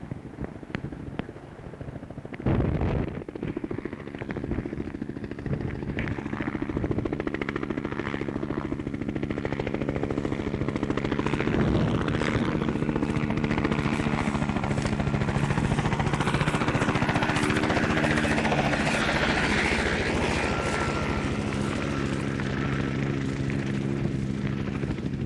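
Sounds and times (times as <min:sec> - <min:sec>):
attack helicopter rotor chop approaching down a runway: 0:00.0 - 0:25.2
attack helicopter dense engine whine: 0:00.1 - 0:25.2.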